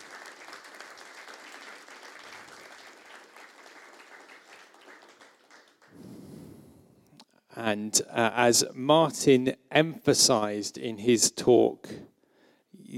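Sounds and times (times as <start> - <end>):
audience applause: 0.0 - 6.1
speech: 7.6 - 12.1.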